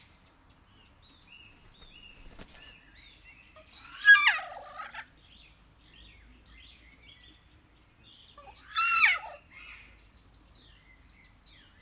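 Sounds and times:
faint thin whistles: 1.6s - 2.7s
captive kea giving a harsh screech in a zoo at Jászberény: 3.8s - 5.0s, 8.5s - 9.4s.

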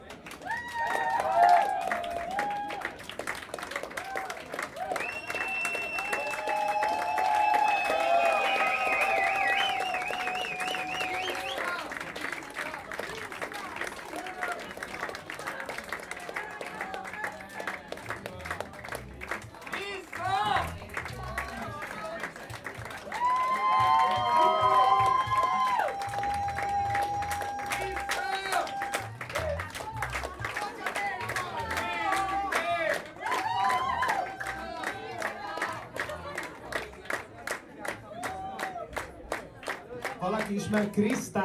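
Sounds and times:
cheering voices: 0.0s - 41.4s
crowd applauding after a live band performance: 0.0s - 41.4s
shrill whistles: 5.0s - 11.7s
speech: 40.6s - 41.4s.

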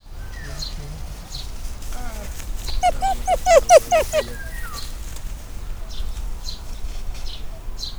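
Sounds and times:
golden jackal whimpering: 2.0s - 5.2s.

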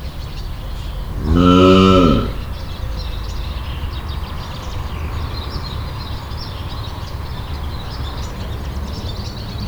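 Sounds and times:
scimitar-horned oryx calling in a higher voice at Debrecen zoo: 0.0s - 3.4s.

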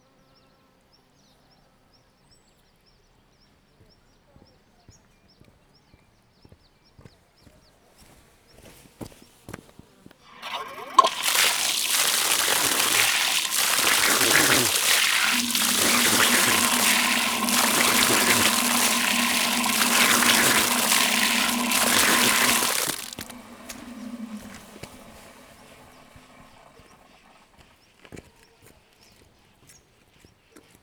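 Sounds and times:
artesian well water flowing in Szögliget: 10.2s - 27.7s
person washing face after arrival: 10.3s - 27.5s.

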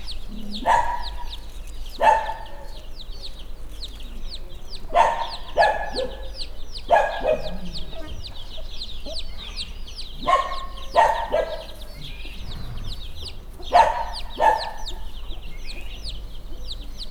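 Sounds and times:
Hungarian hen in a farmyard: 0.0s - 17.1s
chick in a farmyard: 0.0s - 17.1s
dog in a farmyard: 0.3s - 3.4s, 4.9s - 15.2s.

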